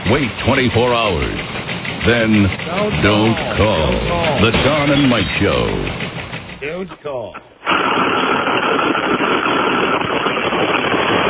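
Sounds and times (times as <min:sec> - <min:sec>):
semi truck engine idling: 0:00.0 - 0:07.6
speech: 0:00.1 - 0:10.3.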